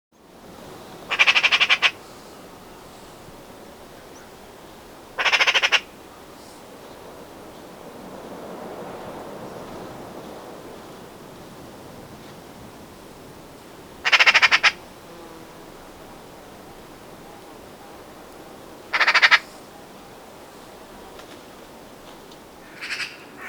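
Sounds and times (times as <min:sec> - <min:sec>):
magpie birdsong: 0:01.1 - 0:02.0, 0:05.2 - 0:06.0, 0:14.0 - 0:14.8, 0:22.6 - 0:23.4.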